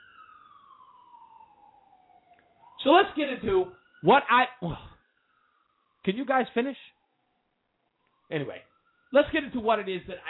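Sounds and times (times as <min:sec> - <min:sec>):
emergency vehicle siren wailing outside: 0:00.0 - 0:10.2
speech: 0:02.8 - 0:04.9, 0:06.0 - 0:07.0, 0:08.3 - 0:10.2.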